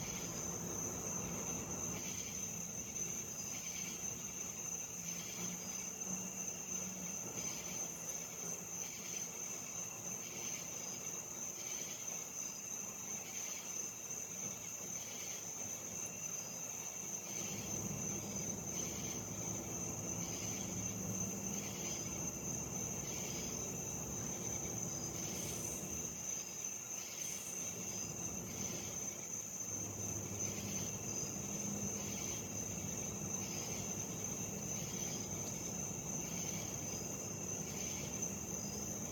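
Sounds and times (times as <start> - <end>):
low rumble of traffic or an aircraft: 0.0 - 3.0, 17.4 - 26.3, 27.7 - 39.0
cicadas and katydids pulsing chirp in the US south summer: 0.0 - 39.0
steady piercing insect drone in the US south: 0.0 - 39.0.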